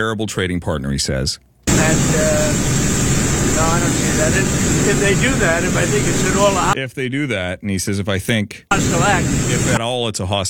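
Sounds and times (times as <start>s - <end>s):
speech: 0.0s - 2.8s, 3.5s - 10.4s
jet engine roar: 1.7s - 6.8s, 8.7s - 9.8s.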